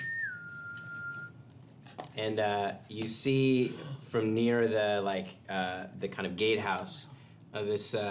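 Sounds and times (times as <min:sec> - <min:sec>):
short whistle: 0:00.0 - 0:01.4
low hum: 0:00.0 - 0:08.0
speech: 0:02.2 - 0:08.0.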